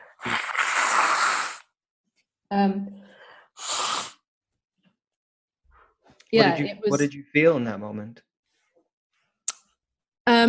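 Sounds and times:
person blowing their nose: 0.1 - 1.8, 3.6 - 4.3
speech: 2.6 - 2.9, 6.3 - 8.3.

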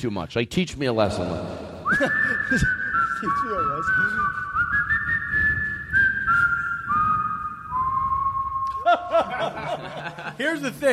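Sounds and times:
speech: 0.0 - 4.4, 9.2 - 10.9
off-key whistled tune with heavy reverb: 1.8 - 9.8
laughter: 1.9 - 2.9, 8.8 - 10.8.

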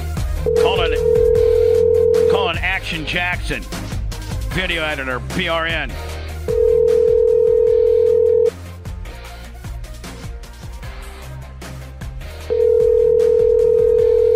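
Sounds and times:
rhythmic music: 0.0 - 14.3
ringback tone on an outgoing phone call: 0.4 - 2.6, 6.5 - 8.6, 12.5 - 14.3
speech: 2.8 - 3.8, 4.5 - 6.1.

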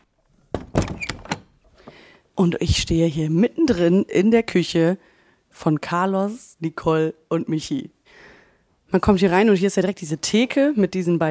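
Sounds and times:
apartment door pushed shut: 0.5 - 1.5
speech: 2.4 - 8.0, 8.9 - 11.2.

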